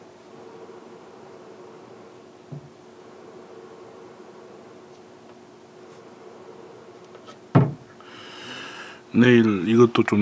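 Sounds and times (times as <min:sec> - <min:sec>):
computer fan whirring through an open door: 0:00.0 - 0:10.2
faint constant tone: 0:00.0 - 0:10.2
soft knock: 0:02.5 - 0:02.7
speech: 0:09.2 - 0:10.2.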